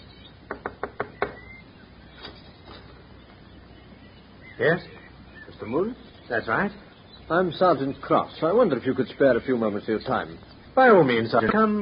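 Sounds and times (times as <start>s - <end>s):
knocking on a wooden door: 0.5s - 1.4s
speech: 4.6s - 5.0s, 5.6s - 11.7s.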